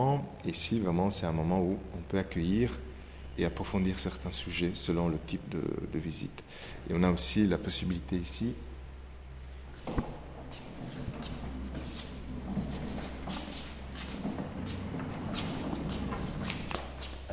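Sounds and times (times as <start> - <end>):
speech: 0.0 - 8.7
drawer sliding open under a large model: 9.8 - 17.3.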